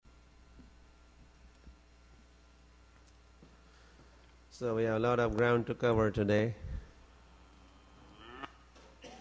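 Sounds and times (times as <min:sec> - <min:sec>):
speech: 0:04.6 - 0:06.7
cow mooing: 0:07.8 - 0:08.6
cow grunting: 0:07.9 - 0:08.6.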